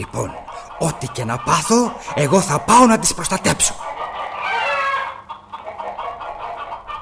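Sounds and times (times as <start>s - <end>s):
speech: 0.0s - 3.9s
hens clucking in a chicken coop: 0.0s - 7.0s.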